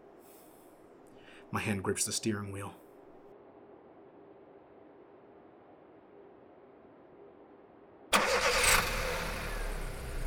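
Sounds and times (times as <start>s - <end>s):
speech: 1.5s - 2.8s
car engine cranking, coughing and settling into a rough low rumble: 8.1s - 10.2s.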